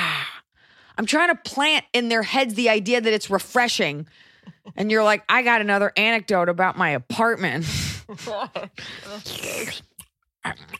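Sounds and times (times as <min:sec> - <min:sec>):
speech: 0:01.0 - 0:10.7
voice imitating someone sipping a drink with exaggerated slurping: 0:08.7 - 0:10.7.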